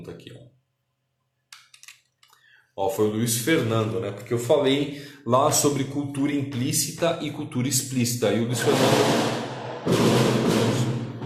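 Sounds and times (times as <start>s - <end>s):
speech: 0.0s - 0.6s, 2.8s - 10.2s
firework-like bang with rumbling crackle: 8.6s - 11.2s.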